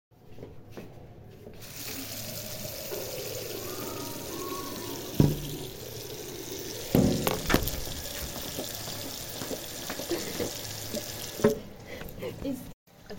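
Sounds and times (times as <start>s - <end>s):
water tap running: 1.6s - 11.7s.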